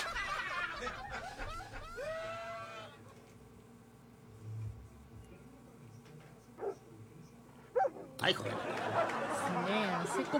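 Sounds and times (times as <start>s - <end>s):
laughter: 0.0s - 2.3s, 8.2s - 10.3s
dog barks and whines played by a smart speaker: 6.6s - 6.8s, 7.7s - 8.2s
speech: 8.2s - 10.3s.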